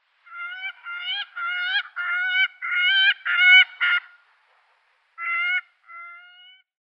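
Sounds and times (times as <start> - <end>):
gyrfalcon Falco rusticolus calling: 0.2 - 4.2, 5.2 - 6.6.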